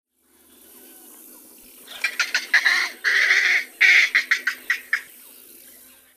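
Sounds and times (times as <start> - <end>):
green heron Butorides virescens: 0.4 - 6.0.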